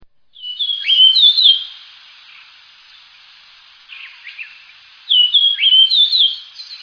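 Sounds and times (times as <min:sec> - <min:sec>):
bird chirping softly: 0:00.3 - 0:03.2, 0:03.8 - 0:06.8
bird whistling song phrase in Higashiosaka Japan: 0:00.4 - 0:02.5, 0:03.9 - 0:06.8.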